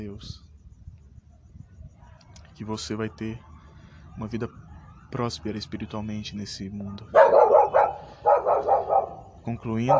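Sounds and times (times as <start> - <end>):
speech: 0.0 - 0.4, 2.6 - 3.5, 4.2 - 7.7, 9.5 - 9.9
female dog barking: 7.0 - 9.9.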